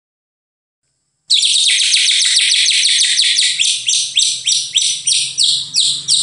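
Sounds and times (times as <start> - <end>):
white-rumped shama singing high sharp downslurred notes: 1.3 - 6.2.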